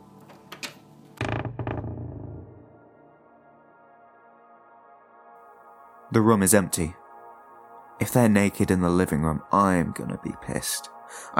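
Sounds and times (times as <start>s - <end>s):
door creaking open: 0.2s - 2.9s
speech: 6.1s - 7.0s, 8.0s - 11.3s.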